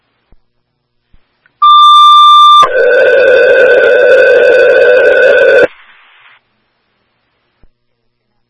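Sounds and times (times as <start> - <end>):
two-pitch electronic alarm beep during an alarm test: 1.6 - 2.7
harsh sustained electronic alarm buzzing tone during an alarm test: 1.6 - 5.7.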